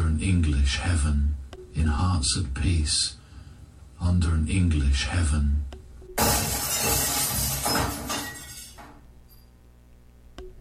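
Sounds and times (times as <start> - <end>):
speech: 0.2 - 3.2, 4.0 - 6.5
glass lemonade pitcher shattering on marble floor: 6.2 - 8.9
small clink of settling glass: 6.2 - 9.5.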